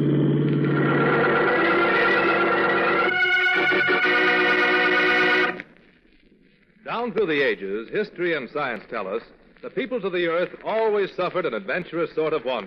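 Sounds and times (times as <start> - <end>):
car engine revving while speeding: 0.0 - 5.6
speech: 7.0 - 12.6.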